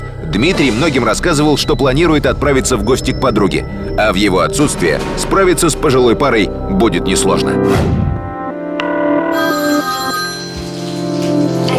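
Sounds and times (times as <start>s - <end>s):
speech: 0.3s - 8.0s
telephone ringing loudly in an apartment: 8.8s - 11.7s.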